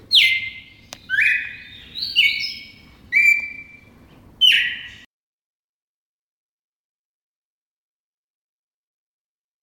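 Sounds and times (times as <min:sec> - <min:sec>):
red-crested cardinal whistling song: 0:00.1 - 0:05.1.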